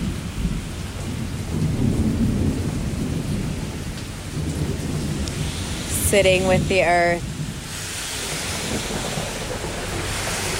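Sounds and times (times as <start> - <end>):
heavy rain rushing in a rainstorm: 0.0 - 10.5
flowing river roaring: 4.4 - 10.5
speech: 6.1 - 7.3.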